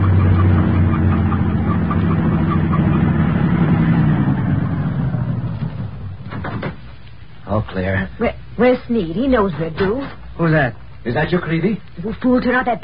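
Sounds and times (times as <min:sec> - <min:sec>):
heavy truck with no headlights rumbling past: 0:00.0 - 0:06.4
speech: 0:07.7 - 0:12.8.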